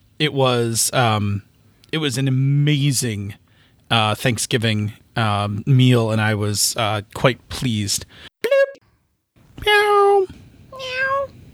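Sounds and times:
speech: 0.2 - 8.3
cat meowing: 9.6 - 11.5.

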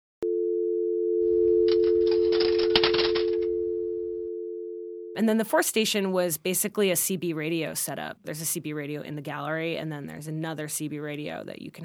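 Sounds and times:
telephone dial tone: 0.2 - 5.2
speech: 5.2 - 11.8.

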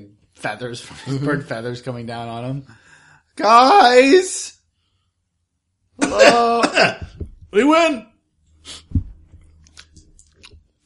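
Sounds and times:
speech: 0.4 - 4.6, 6.0 - 8.9
low thump: 7.0 - 7.5
soft faint wet mouth clicks: 9.5 - 10.8
crisp crunch of chewing on a large drumstick: 9.6 - 10.8.

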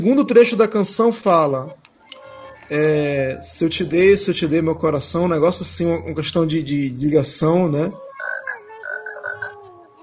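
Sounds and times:
speech: 0.0 - 1.8, 2.7 - 8.0
frog croaking: 7.9 - 9.7.

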